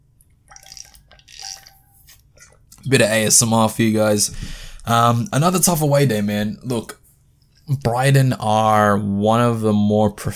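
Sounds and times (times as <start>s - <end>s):
person drinking a glass of water: 0.3s - 2.9s
speech: 2.9s - 7.0s, 7.7s - 10.3s.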